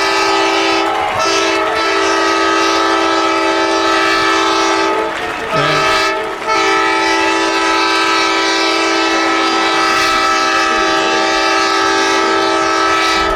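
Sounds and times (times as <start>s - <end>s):
loud deep foghorn blaring after a home run at a college baseball game: 0.0s - 13.3s.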